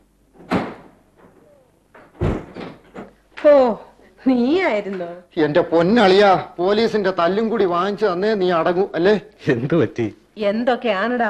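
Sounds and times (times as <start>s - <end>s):
door being opened with quiet thuds and knocks: 0.4s - 3.1s
speech: 3.4s - 11.2s.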